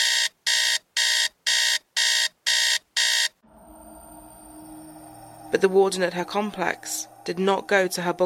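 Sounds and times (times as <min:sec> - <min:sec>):
panic alarm blaring in electronic pulses: 0:00.0 - 0:08.2
speech: 0:05.5 - 0:08.2.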